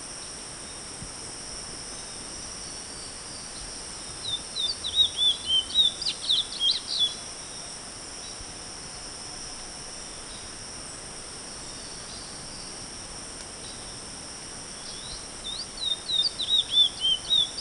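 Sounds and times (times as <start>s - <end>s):
constant high hiss: 0.0s - 17.6s
Chestnut-bellied seed finch singing quick varied whistled notes: 4.2s - 7.2s, 14.8s - 17.6s.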